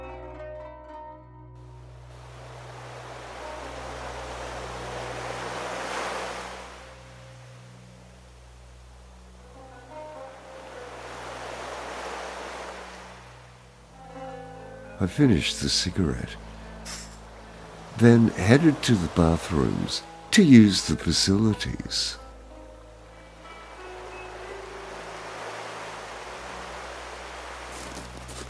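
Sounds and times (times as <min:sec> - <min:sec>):
faint wind: 0:01.6 - 0:28.4
gentle gulf waves lapping the shore at night: 0:01.8 - 0:14.2, 0:15.6 - 0:28.4
speech: 0:15.0 - 0:16.5, 0:18.0 - 0:22.2.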